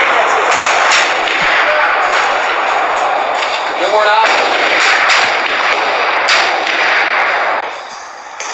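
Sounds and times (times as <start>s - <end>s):
gunfire sound effect barrage of overlapping shots: 0.0s - 8.5s.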